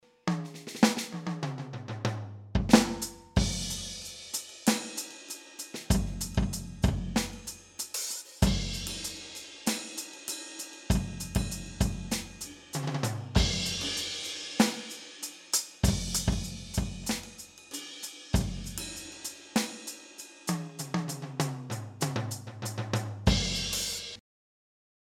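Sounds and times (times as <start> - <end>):
Alesis Crimson II electronic drum kit jazz kit: 0.3 - 1.6, 2.6 - 24.2.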